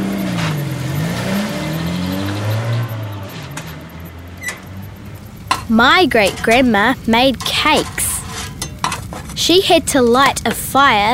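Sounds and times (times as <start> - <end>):
car engine revving and driving: 0.0 - 9.4
brief squeaks: 4.4 - 4.7
speech: 5.7 - 8.0, 9.4 - 11.1.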